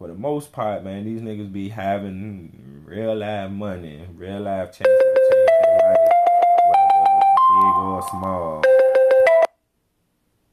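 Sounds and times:
speech: 0.2s - 5.5s, 7.6s - 8.8s
phone's electronic ringtone for an incoming call chirping: 4.9s - 9.5s.

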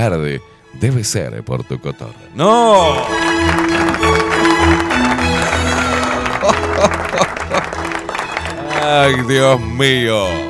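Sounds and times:
speech: 0.0s - 4.1s, 8.9s - 10.4s
loud sustained music: 2.4s - 10.0s
audience applause at a show: 2.5s - 9.6s
laughter: 2.7s - 9.3s.

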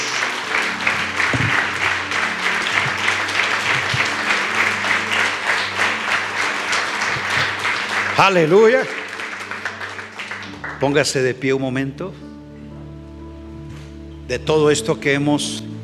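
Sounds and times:
congregation applauding: 0.0s - 11.3s
speech: 8.2s - 9.0s, 10.8s - 12.2s, 14.3s - 15.7s.

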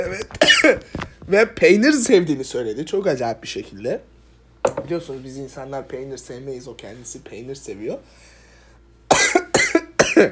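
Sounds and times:
speech: 0.0s - 8.3s, 10.2s - 10.3s
person coughing: 0.3s - 0.9s, 9.1s - 10.3s.

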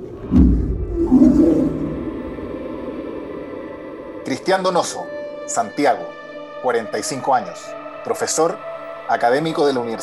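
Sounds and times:
deep rumbling bear roar and growl: 0.0s - 2.7s
speech: 0.3s - 1.3s, 4.2s - 10.0s.

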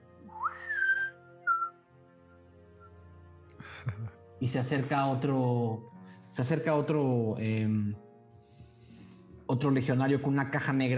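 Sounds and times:
person whistling a rising note: 0.2s - 1.8s
laughter: 3.6s - 4.2s
speech: 3.8s - 8.0s, 9.5s - 10.9s.

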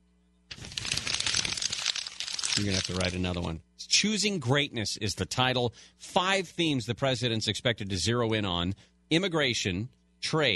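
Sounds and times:
paper sheets rustling and crinkling as they are handled: 0.5s - 3.5s
speech: 2.6s - 10.5s.

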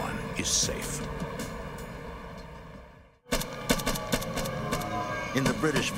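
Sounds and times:
speech: 0.4s - 1.3s, 5.4s - 5.9s
gunshots in a firefight between drug runners and police in the British Virgin Islands: 3.3s - 5.9s.

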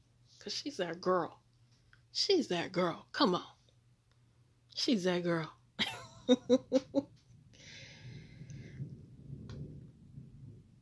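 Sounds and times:
speech: 0.4s - 1.4s, 2.2s - 3.6s, 4.8s - 7.2s
low rolling thunder: 6.8s - 10.8s.

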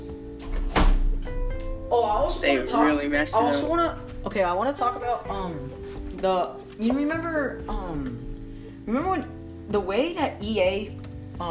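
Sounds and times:
door shutting: 0.4s - 1.3s
speech: 1.9s - 11.4s.

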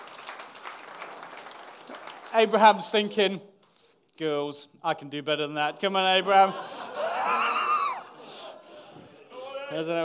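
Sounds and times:
audience applause: 0.0s - 2.7s
speech: 2.3s - 3.5s, 4.2s - 6.8s, 9.7s - 10.0s
laughter: 6.1s - 10.0s.

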